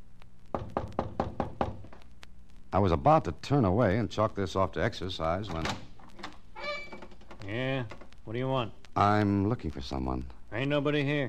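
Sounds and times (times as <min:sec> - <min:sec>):
firm knocking on a wooden front door: 0:00.6 - 0:01.8
speech: 0:02.7 - 0:05.9, 0:07.4 - 0:11.2.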